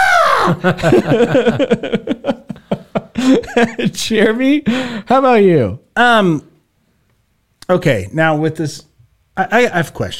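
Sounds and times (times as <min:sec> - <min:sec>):
voice imitating a screaming goat: 0:00.0 - 0:00.5
laughter: 0:00.4 - 0:04.0
speech: 0:00.5 - 0:06.5, 0:07.7 - 0:10.1.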